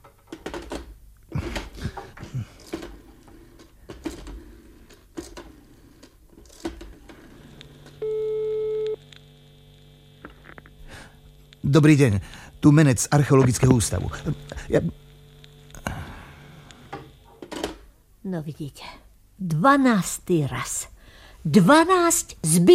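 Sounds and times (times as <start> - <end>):
telephone busy tone after a call is cut off: 7.8 - 9.1
speech: 11.7 - 15.0, 18.4 - 22.7.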